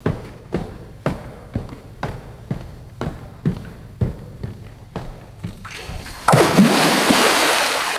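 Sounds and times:
footsteps on springboard in indoor pool: 0:00.0 - 0:07.8
splash in indoor pool water: 0:05.7 - 0:07.9.

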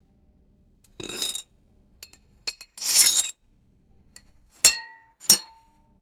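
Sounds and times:
metal knife scraping inside glass jar: 0:01.0 - 0:01.4, 0:02.5 - 0:03.3.

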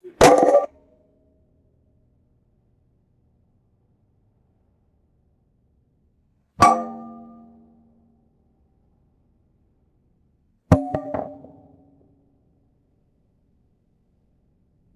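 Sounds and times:
hollow steel object dropping and ringing: 0:00.1 - 0:00.7, 0:06.6 - 0:07.4, 0:10.8 - 0:11.8.

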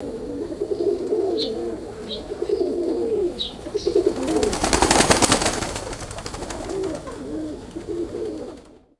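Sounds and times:
flock of pigeons cooing: 0:00.0 - 0:08.9
flock of pigeons flying away: 0:00.9 - 0:08.9.

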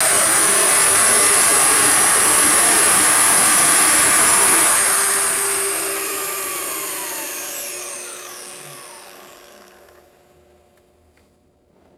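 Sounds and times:
vacuum cleaner motor spinning down to stop: 0:00.0 - 0:10.3.

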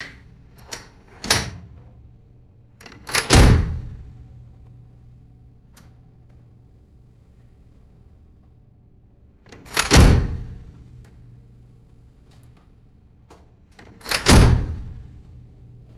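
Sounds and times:
heavy metal safe door slamming: 0:00.0 - 0:02.0, 0:02.8 - 0:04.4, 0:09.6 - 0:10.7, 0:14.1 - 0:15.2.

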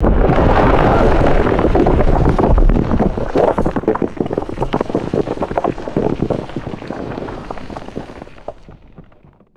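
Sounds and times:
large heavy rockslide tumbling and settling: 0:00.0 - 0:09.5.

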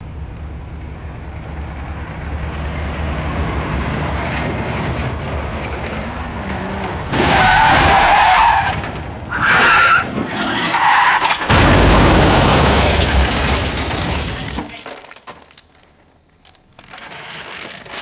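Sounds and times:
heavy truck crashing into car: 0:02.0 - 0:16.1.

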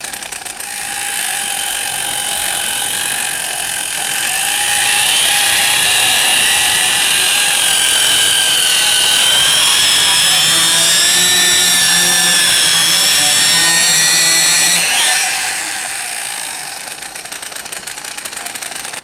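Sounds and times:
gas powered buzzsaw idling and revving: 0:00.0 - 0:19.0.

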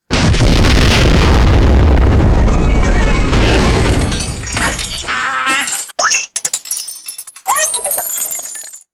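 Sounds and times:
cartoon explosion: 0:00.1 - 0:05.1
glass shattering: 0:02.6 - 0:08.9.

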